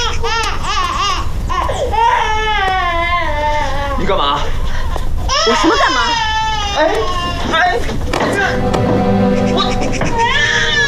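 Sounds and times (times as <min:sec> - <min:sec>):
frightened young child crying loudly: 0:00.0 - 0:04.0, 0:05.3 - 0:07.5, 0:10.1 - 0:10.8
speech: 0:04.1 - 0:04.3, 0:05.5 - 0:06.0, 0:06.8 - 0:10.4.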